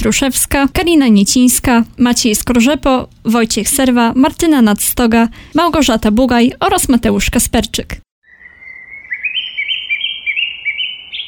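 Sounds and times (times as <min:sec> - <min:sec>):
speech: 0:00.0 - 0:08.0
birds chirping and singing: 0:08.2 - 0:11.2.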